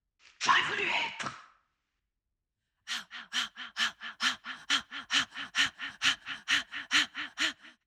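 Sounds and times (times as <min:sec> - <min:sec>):
breath: 0:02.9 - 0:07.8.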